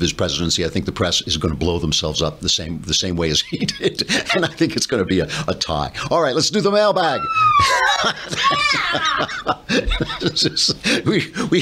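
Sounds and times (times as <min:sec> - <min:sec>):
speech: 0:00.0 - 0:11.5
high-pitched wavering scream: 0:07.2 - 0:08.0
short breathy laugh-like bursts: 0:07.5 - 0:11.1.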